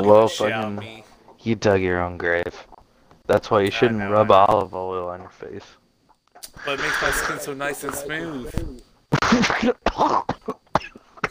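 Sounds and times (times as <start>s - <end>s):
speech: 0.0s - 2.7s, 3.3s - 5.8s, 6.5s - 10.6s
person coughing harshly: 9.2s - 11.3s.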